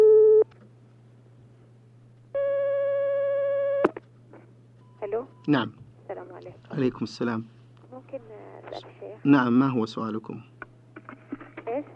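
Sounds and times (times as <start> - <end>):
telephone line tones as a call comes in on a phone-in question line: 2.4 - 3.9
speech: 5.5 - 5.8, 6.4 - 10.5.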